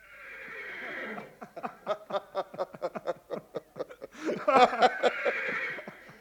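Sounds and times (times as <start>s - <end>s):
horse whinnying: 0.0s - 1.3s, 5.1s - 5.9s
laughter: 1.2s - 6.0s.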